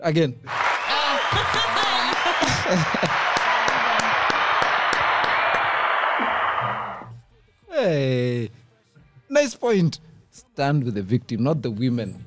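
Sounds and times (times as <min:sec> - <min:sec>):
speech: 0:00.0 - 0:00.5, 0:01.3 - 0:03.3, 0:07.8 - 0:08.6, 0:09.3 - 0:12.2
crowd applauding with dense steady clapping: 0:00.5 - 0:07.1
laughter: 0:00.5 - 0:07.1
voices calling out: 0:00.5 - 0:07.1.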